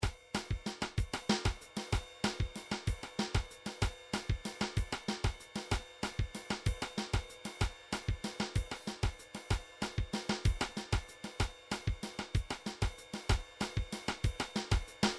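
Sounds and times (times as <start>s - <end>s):
MIDI drum groove: 0.0s - 15.1s.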